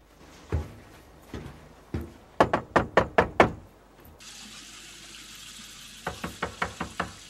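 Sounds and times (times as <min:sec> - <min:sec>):
knocking on a front door: 0:02.0 - 0:03.6, 0:06.1 - 0:07.2.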